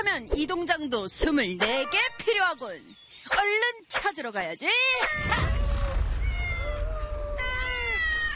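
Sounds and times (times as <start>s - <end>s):
speech: 0.1s - 5.5s
cats meowing: 6.0s - 8.3s.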